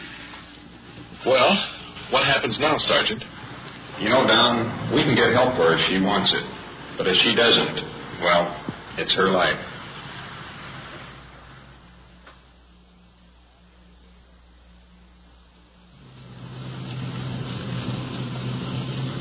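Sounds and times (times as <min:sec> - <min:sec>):
broadband road noise: 0:00.0 - 0:19.1
speech: 0:01.2 - 0:03.4, 0:04.0 - 0:09.7
patrol car engine humming and accelerating: 0:03.2 - 0:12.4, 0:15.9 - 0:19.1.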